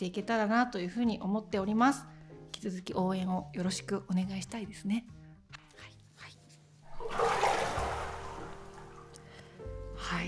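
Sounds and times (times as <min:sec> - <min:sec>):
speech: 0:00.0 - 0:05.2
hot water rushing and splashing: 0:06.9 - 0:09.2.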